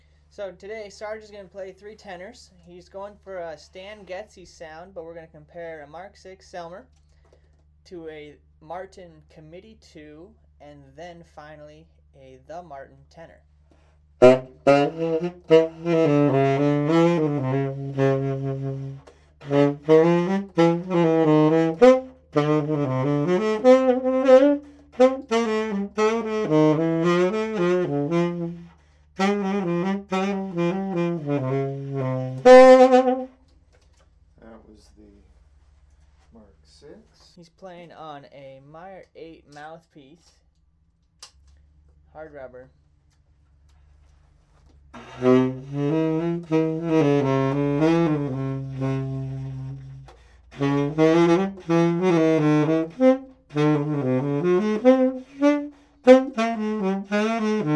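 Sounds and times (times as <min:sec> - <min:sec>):
tenor saxophone: 0:13.7 - 0:33.6, 0:44.6 - 0:57.7.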